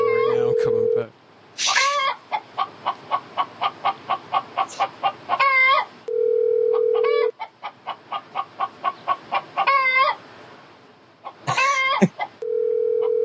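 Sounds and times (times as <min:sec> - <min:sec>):
flat steady phone tones: 0:00.0 - 0:01.1, 0:06.1 - 0:07.3, 0:12.4 - 0:13.2
chicken clucking played down a telephone line: 0:01.6 - 0:05.9, 0:06.9 - 0:10.2, 0:11.2 - 0:12.4.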